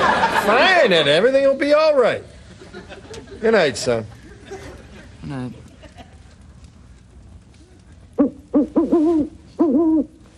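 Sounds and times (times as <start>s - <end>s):
laughter: 0.0s - 0.9s, 2.4s - 6.6s, 7.5s - 8.2s
speech: 0.5s - 4.2s, 5.2s - 5.6s, 8.2s - 10.2s
owl hooting: 8.2s - 10.3s.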